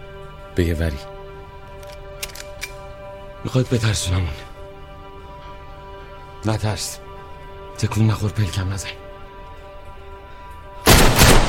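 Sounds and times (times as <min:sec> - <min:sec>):
speech: 0:00.6 - 0:01.2, 0:03.4 - 0:04.5, 0:06.4 - 0:07.0, 0:07.8 - 0:09.0
gunshots fired into the air: 0:10.9 - 0:11.4.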